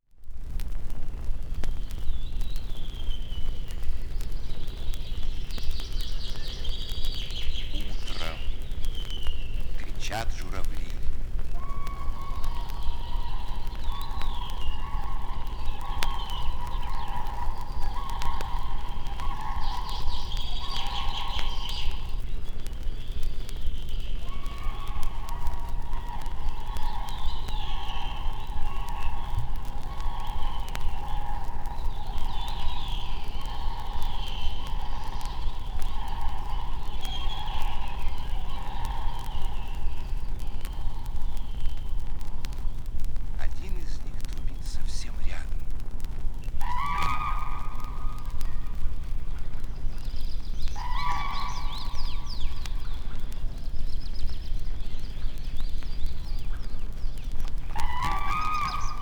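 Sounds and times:
bird voices in nature: 1.2 - 59.0.

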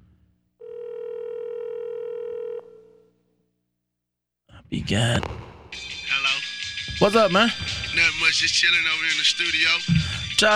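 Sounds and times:
steady telephone ringback tone: 0.6 - 3.0
speech: 4.7 - 5.9, 7.0 - 10.5.

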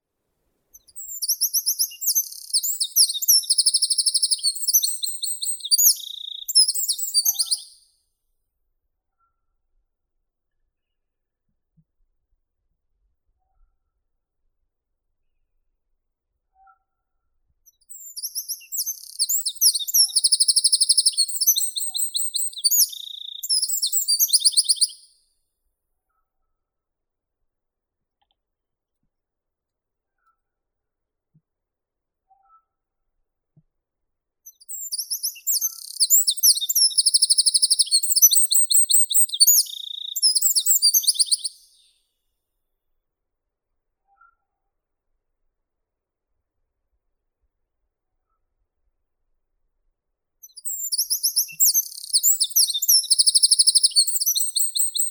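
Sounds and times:
Troglodytes troglodytes: 0.8 - 7.7, 17.9 - 25.0, 34.5 - 41.6, 50.4 - 55.0.

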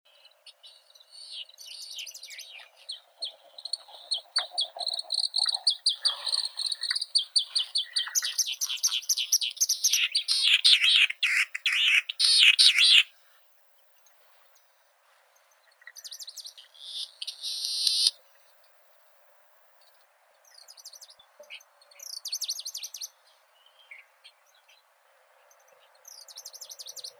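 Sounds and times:
Japanese snipe Gallinago hardwickii: 2.1 - 13.1, 16.8 - 18.2.

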